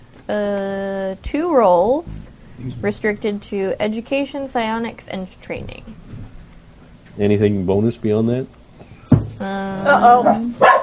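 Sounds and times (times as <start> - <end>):
speech: 0.3 - 6.2, 7.2 - 8.6, 9.4 - 10.7
dog barking and yowling: 9.9 - 10.8.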